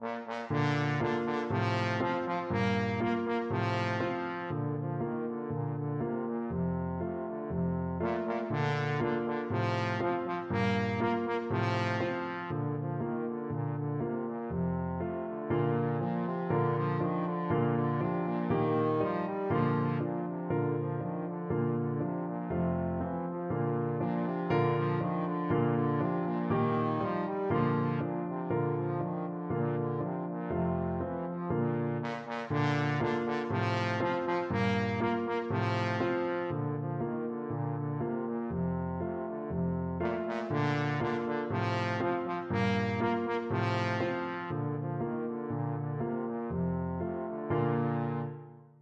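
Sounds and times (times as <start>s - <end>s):
trombone playing a classical piece: 0.0s - 48.8s.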